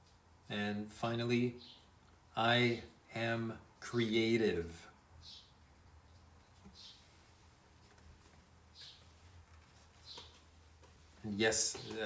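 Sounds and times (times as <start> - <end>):
speech: 0.5 - 1.8, 2.4 - 5.4, 11.2 - 12.0
birds chirping: 1.6 - 2.0, 5.2 - 7.2, 7.8 - 12.0.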